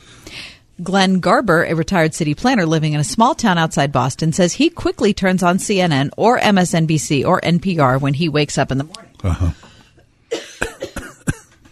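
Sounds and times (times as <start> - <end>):
speech: 0.8 - 9.7
person dry coughing: 9.2 - 11.6.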